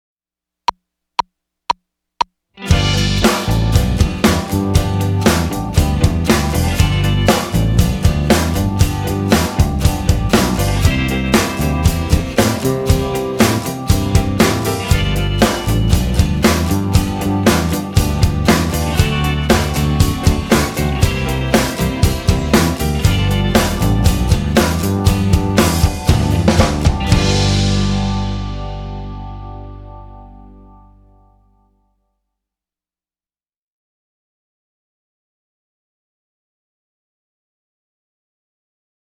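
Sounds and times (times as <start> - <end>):
blues backing music in G without guitar: 2.6 - 31.2.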